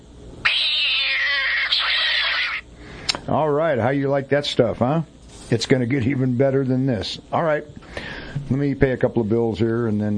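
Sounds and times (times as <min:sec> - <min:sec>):
cat meowing: 0:00.4 - 0:02.6
speech: 0:03.3 - 0:10.1.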